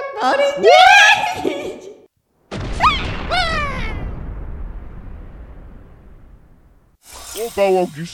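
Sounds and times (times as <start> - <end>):
speech: 0.2 - 1.5, 7.5 - 8.1
explosion booming: 2.5 - 7.0.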